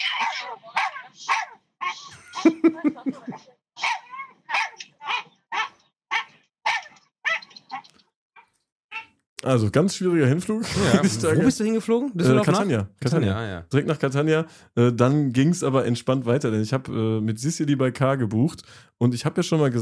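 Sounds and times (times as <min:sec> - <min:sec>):
small dog barking on an airplane: 0:00.2 - 0:02.1, 0:03.8 - 0:07.9
laughter: 0:02.1 - 0:03.5, 0:10.5 - 0:12.7
speech: 0:09.5 - 0:19.7.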